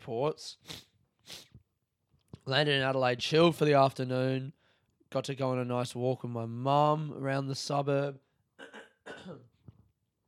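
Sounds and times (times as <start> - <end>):
speech: 0.0 - 0.8, 2.4 - 8.2, 9.2 - 9.5
throat clearing: 8.6 - 9.6.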